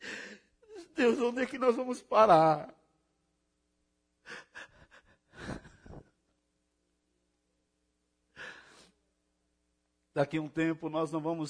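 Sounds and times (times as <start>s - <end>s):
person sobbing with gasping breaths: 0.0s - 1.1s, 4.2s - 6.2s
speech: 1.0s - 2.8s, 10.2s - 11.4s.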